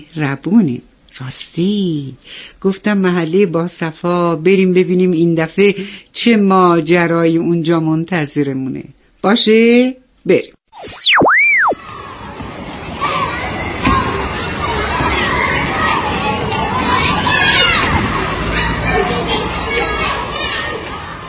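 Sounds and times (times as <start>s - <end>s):
speech: 0.0s - 11.0s
springy boing-like swoop: 10.7s - 11.8s
children playing and shouting in an amusement park: 11.0s - 21.2s
crowd babble in an amusement park: 11.9s - 21.2s.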